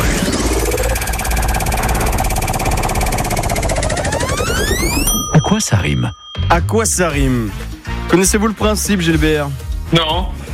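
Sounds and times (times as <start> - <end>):
game show prize wheel spinning: 0.2 - 7.1
speech: 5.5 - 10.4.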